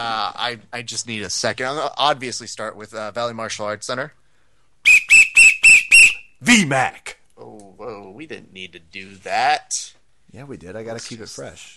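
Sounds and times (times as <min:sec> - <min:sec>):
speech: 0:00.0 - 0:04.2, 0:06.4 - 0:11.7
shrill whistle blasts: 0:04.8 - 0:06.4.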